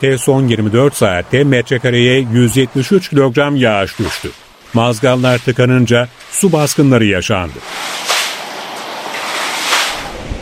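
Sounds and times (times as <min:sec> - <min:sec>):
speech: 0:00.0 - 0:08.2
constant wash of churning sea water: 0:00.0 - 0:10.4
storm wind buffeting: 0:00.0 - 0:10.4
large storm waves up to 4 metres high crashing at sea cliffs: 0:03.5 - 0:10.4.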